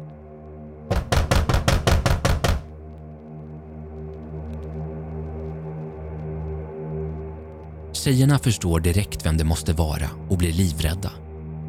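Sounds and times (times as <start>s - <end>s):
heavy banging on a door: 0.9s - 2.7s
speech: 8.0s - 11.2s.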